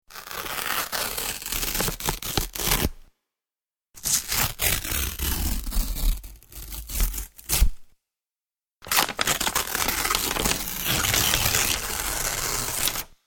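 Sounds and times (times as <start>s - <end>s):
cardboard tearing: 0.2s - 2.9s, 4.0s - 7.6s, 8.8s - 13.1s.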